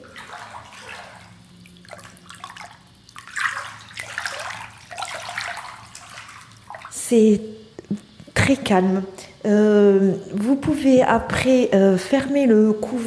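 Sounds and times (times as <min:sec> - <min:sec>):
water sloshing and lapping in a shell-shaped wellness flotation pod: 0:00.0 - 0:08.4
speech: 0:07.1 - 0:07.6, 0:08.5 - 0:13.0.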